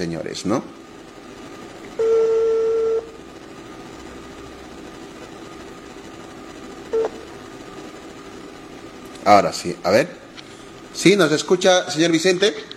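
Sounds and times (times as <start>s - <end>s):
speech: 0.0s - 0.9s, 9.3s - 10.2s, 11.0s - 12.7s
faint telephone line hum: 0.0s - 12.7s
telephone beeps while a call is being connected: 2.0s - 3.1s, 6.9s - 7.2s.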